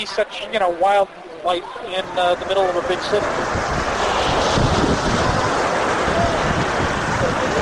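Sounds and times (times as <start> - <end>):
speech: 0.0 - 3.6
ocean surf on a beach in New York: 0.0 - 7.6.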